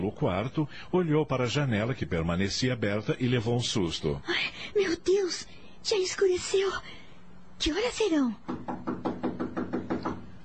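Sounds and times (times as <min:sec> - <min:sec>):
speech: 0:00.1 - 0:07.0, 0:07.6 - 0:08.9
firm knocking on a door: 0:08.4 - 0:10.3.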